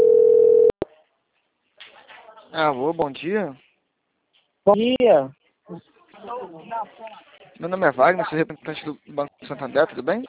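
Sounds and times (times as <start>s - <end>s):
telephone ringback tone while a call is connecting: 0.0s - 0.7s
speech: 2.5s - 3.6s, 4.7s - 10.2s.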